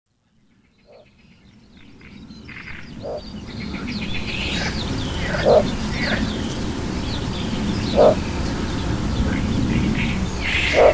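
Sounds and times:
other birds calling: 0:01.8 - 0:10.9
little bittern calling with short deep croaking barks: 0:03.0 - 0:03.2, 0:05.2 - 0:06.2, 0:07.9 - 0:08.2, 0:10.5 - 0:10.9.

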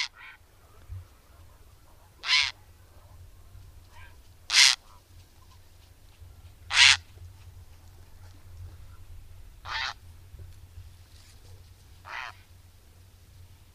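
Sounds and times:
grey heron calling with harsh croaking squawks: 0:00.0 - 0:00.4, 0:02.2 - 0:02.6, 0:04.0 - 0:04.9, 0:06.7 - 0:07.1, 0:09.6 - 0:10.0, 0:12.0 - 0:12.5.

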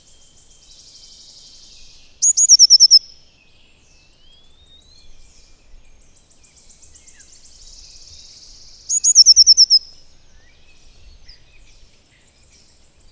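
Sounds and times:
Eurasian blue tit song with descending trill: 0:00.0 - 0:13.0
faint buzzy twittering: 0:00.0 - 0:13.0.

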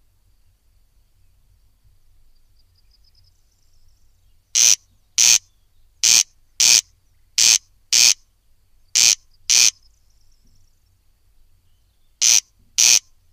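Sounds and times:
corncrake rasping call: 0:04.5 - 0:08.3, 0:08.9 - 0:09.9, 0:12.2 - 0:13.2.

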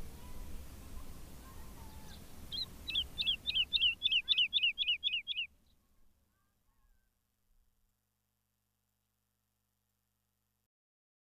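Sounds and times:
woodlark song: 0:00.0 - 0:07.6.

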